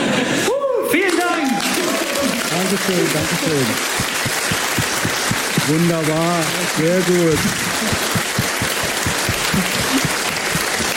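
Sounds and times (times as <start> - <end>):
audience applause: 1.0 - 10.9
laughter: 2.7 - 10.9
speech: 2.8 - 4.4, 5.7 - 7.7, 9.6 - 9.8.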